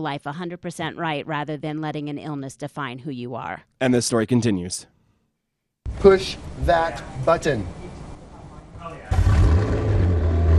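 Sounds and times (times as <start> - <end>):
speech: 0.0 - 5.0, 5.8 - 7.8
twin-turbo V8 sports car engine revving: 9.1 - 10.5.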